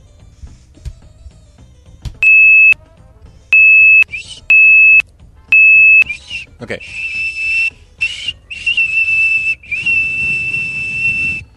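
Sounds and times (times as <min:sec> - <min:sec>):
person whistling a 2600 hertz telephone tone: 0:02.2 - 0:02.8, 0:03.6 - 0:05.0, 0:05.6 - 0:11.5
speech: 0:06.7 - 0:07.1.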